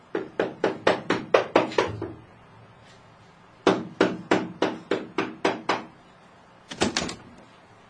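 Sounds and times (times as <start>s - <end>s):
firm knocking on a door: 0.1s - 2.2s, 3.6s - 5.9s.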